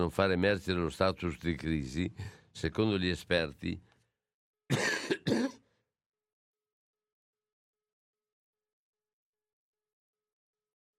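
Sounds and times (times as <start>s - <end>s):
speech: 0.0s - 3.9s, 4.7s - 5.4s
person coughing: 4.7s - 5.7s.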